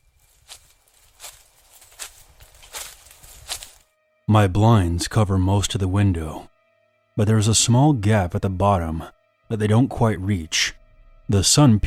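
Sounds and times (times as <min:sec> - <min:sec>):
soft footsteps at a slow steady pace: 0:00.0 - 0:03.9
speech: 0:04.3 - 0:06.5, 0:07.2 - 0:11.8.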